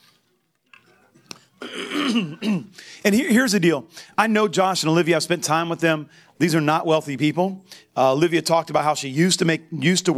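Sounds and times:
man clearing his throat close to the mic: 1.6s - 2.8s
speech: 2.1s - 10.1s.

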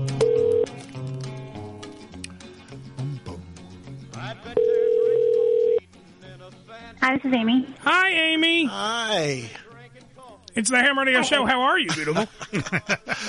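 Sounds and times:
phone line dialing: 0.2s - 0.8s, 4.6s - 5.8s
speech: 7.1s - 9.6s, 10.5s - 13.2s
laughter: 11.2s - 13.2s.

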